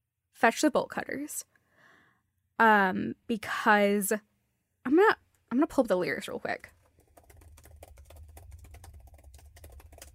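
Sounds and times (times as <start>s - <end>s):
speech: 0.4s - 1.6s, 2.6s - 6.8s
typing on a computer keyboard: 6.6s - 10.1s.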